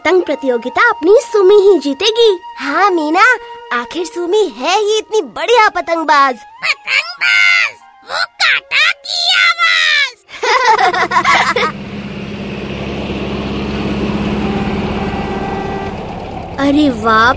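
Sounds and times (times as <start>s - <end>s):
speech: 0.1s - 7.4s, 10.5s - 11.7s, 16.6s - 17.3s
child wailing: 6.6s - 10.2s
laughter: 10.3s - 11.8s
new tractor engine starting up and running: 10.7s - 17.3s.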